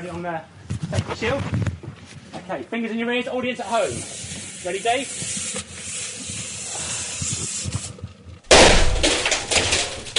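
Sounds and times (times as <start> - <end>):
speech: 0.0 - 1.7, 2.5 - 5.5
escaping CO2 gas hissing: 3.8 - 8.0
CO2 gas explosion bang: 8.5 - 9.9.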